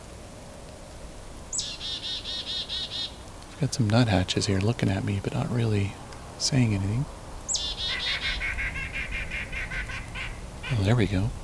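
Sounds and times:
faint hiss: 0:00.0 - 0:11.4
hairy woodpecker squeaky call: 0:01.5 - 0:03.6, 0:07.5 - 0:11.3
speech: 0:03.6 - 0:07.2, 0:10.7 - 0:11.4.

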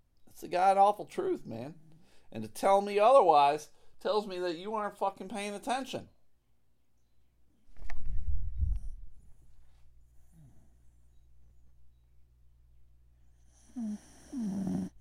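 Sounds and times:
speech: 0:00.4 - 0:06.2
dog snoring: 0:13.4 - 0:14.9.

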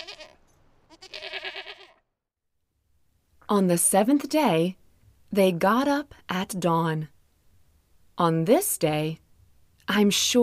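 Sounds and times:
goats bleating: 0:00.0 - 0:02.0
speech: 0:03.5 - 0:07.1, 0:08.2 - 0:09.2, 0:09.9 - 0:10.4.

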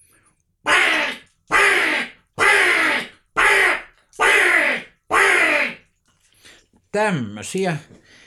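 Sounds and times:
harsh raspy crow caws blown on a bird-call instrument: 0:00.7 - 0:05.8
speech: 0:06.9 - 0:08.0.

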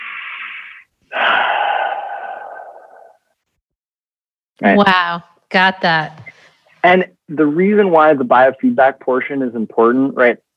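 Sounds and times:
easy natural inhale and long smooth slow exhale: 0:00.0 - 0:03.1
speech: 0:04.6 - 0:06.2, 0:06.8 - 0:10.5.

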